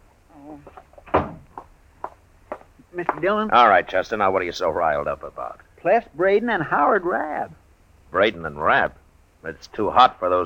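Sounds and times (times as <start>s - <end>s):
soft knocks like footsteps moving across the room: 0.6s - 3.5s
door pushed shut: 1.0s - 1.5s
speech: 3.0s - 10.4s.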